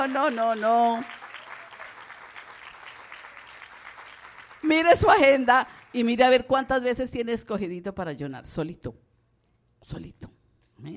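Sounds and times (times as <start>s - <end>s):
speech: 0.0s - 1.2s, 4.6s - 9.0s, 9.8s - 10.9s
audience applause: 0.0s - 6.2s.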